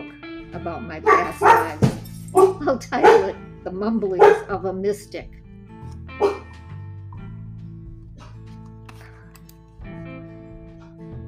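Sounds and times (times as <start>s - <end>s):
speech: 0.6s - 5.4s
dog barking: 1.0s - 1.8s, 2.4s - 3.4s, 4.2s - 4.5s, 6.2s - 6.5s.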